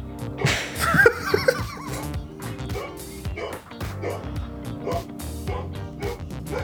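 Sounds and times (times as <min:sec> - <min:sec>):
people laughing: 0:00.4 - 0:06.6
female dog barking and yipping excitedly: 0:00.5 - 0:06.6
voices: 0:01.6 - 0:06.6.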